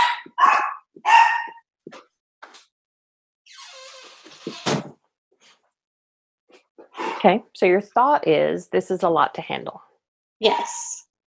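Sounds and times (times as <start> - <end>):
dogs barking: 0.0 - 1.6
speech: 4.4 - 4.8, 7.2 - 11.2.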